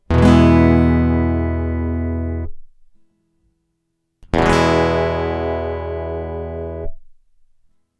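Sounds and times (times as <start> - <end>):
guitar strum: 0.1 - 2.6, 4.3 - 7.0.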